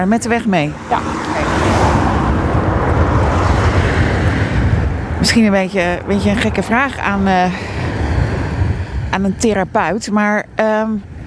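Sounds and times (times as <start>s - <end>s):
speech: 0.0s - 1.9s, 5.2s - 7.8s, 9.2s - 11.1s
cars on a nearby road: 0.0s - 11.2s.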